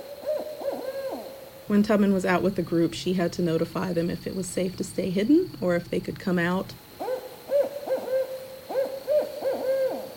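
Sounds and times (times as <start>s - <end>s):
barred owl hooting: 0.0s - 1.7s, 6.9s - 10.1s
faint hum: 0.0s - 10.1s
speech: 1.7s - 6.8s.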